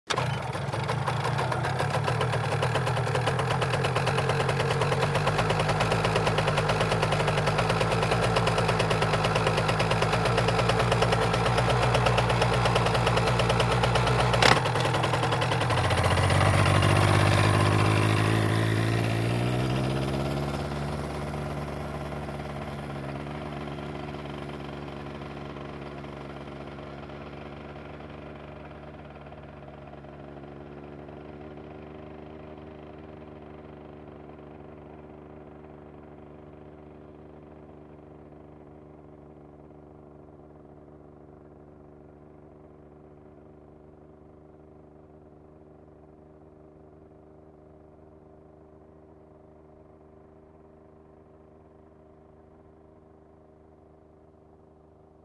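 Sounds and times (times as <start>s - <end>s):
motorcycle starting: 0.1s - 26.4s
motorcycle driving away: 0.1s - 36.1s.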